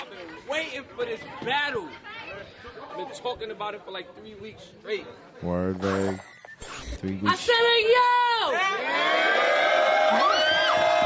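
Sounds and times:
speech: 0.5s - 10.5s
large live crowd cheering and screaming: 8.6s - 11.0s.

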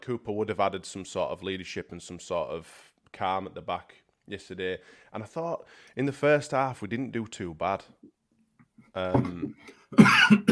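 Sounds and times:
speech: 0.0s - 8.1s, 9.0s - 10.4s
person coughing fit: 9.9s - 10.4s.

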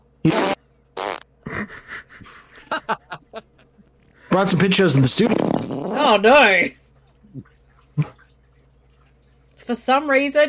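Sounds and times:
loud sputtering farts: 0.3s - 1.3s, 5.0s - 6.2s
breathy chuckles: 1.4s - 3.5s
speech: 4.4s - 6.8s, 9.8s - 10.4s.

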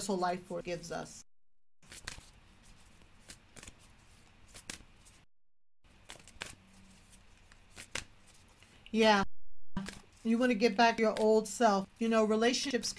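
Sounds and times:
speech: 0.0s - 1.3s, 8.9s - 12.9s
deck of cards shuffled during a spiritual card reading: 1.8s - 5.3s, 5.9s - 8.9s, 9.8s - 11.3s.

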